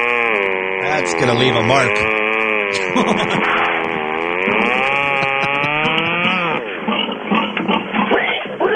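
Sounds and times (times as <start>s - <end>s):
pig squealing and grunting: 0.1s - 8.7s
speech: 1.0s - 3.7s
laughter: 2.7s - 3.7s, 4.5s - 6.6s.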